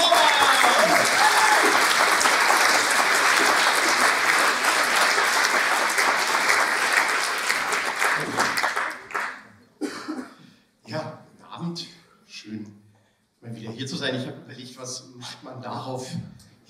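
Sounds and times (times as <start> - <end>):
audience applause for a performer walking onstage: 0.0 - 9.5.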